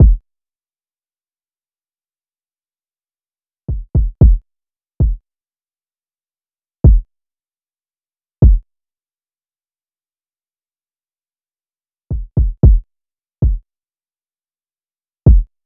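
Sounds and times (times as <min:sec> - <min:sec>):
kick drum loop at 114 BPM: 0:00.0 - 0:00.2, 0:03.7 - 0:04.4, 0:08.4 - 0:08.6, 0:12.1 - 0:12.8, 0:15.3 - 0:15.5.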